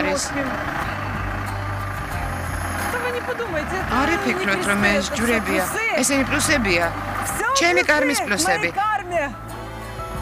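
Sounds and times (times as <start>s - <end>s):
broadband traffic noise: 0.0s - 10.2s
bus engine idling at a bus station: 0.0s - 10.2s
speech: 0.2s - 1.1s, 3.1s - 9.5s.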